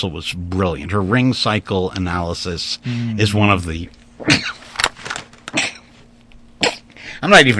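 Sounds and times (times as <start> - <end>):
speech: 0.0 - 4.6, 7.2 - 7.5
person sneezing: 4.2 - 4.7, 5.5 - 6.0, 6.6 - 7.0.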